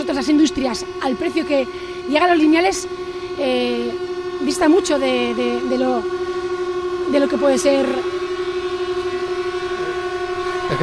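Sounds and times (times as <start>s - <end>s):
horns blaring at a protest: 0.0s - 10.8s
speech: 0.1s - 6.2s, 7.1s - 8.2s.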